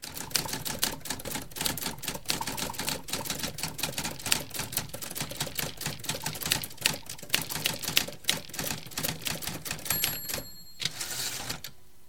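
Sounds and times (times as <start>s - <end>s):
typewriter typing: 0.0s - 11.7s
typewriter bell: 9.5s - 11.7s.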